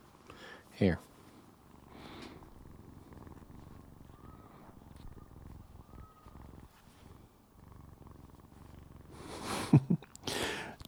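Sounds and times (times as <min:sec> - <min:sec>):
speech: 0:00.8 - 0:01.1
cat purring at the microphone: 0:01.0 - 0:10.7
cat bonking and biting the microphone: 0:02.2 - 0:07.2.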